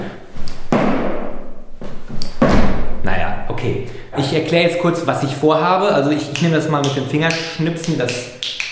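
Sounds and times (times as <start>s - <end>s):
person jumping and landing hard on a wooden floor to imitate thunder: 0.7s - 3.0s
speech: 3.0s - 8.6s.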